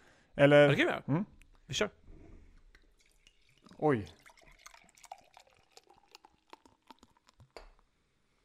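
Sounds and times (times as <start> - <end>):
speech: 0.4 - 2.0, 3.8 - 4.2
fizzy crackles of beer: 2.7 - 7.8
beer pouring from a 500 ml bottle into a glass: 2.7 - 7.9.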